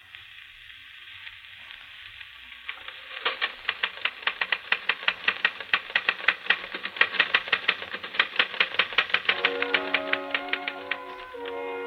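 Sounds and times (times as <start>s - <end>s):
typewriter keystrokes played from a record on a portable phonograph: 2.8s - 11.8s.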